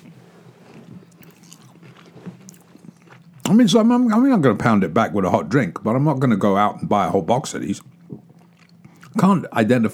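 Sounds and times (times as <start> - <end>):
crunching and chewing a chocolate-covered cream-filled wafer bar: 0.0 - 3.6, 7.8 - 9.3
speech: 3.5 - 7.9, 9.2 - 9.9.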